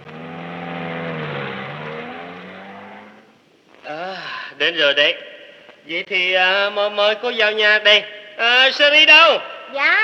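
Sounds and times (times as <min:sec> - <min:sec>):
car engine running and pulling away: 0:00.0 - 0:03.4
speech: 0:04.6 - 0:10.0.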